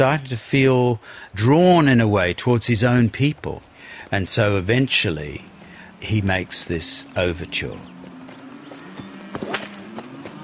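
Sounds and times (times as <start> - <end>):
speech: 0.0 - 7.9
horse hooves clip-clopping at a walking pace: 2.6 - 10.4.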